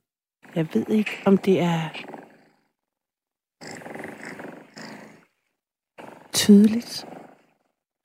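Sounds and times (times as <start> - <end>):
cat purring: 0.4 - 3.0, 3.6 - 8.0
speech: 0.5 - 2.1, 6.4 - 7.2.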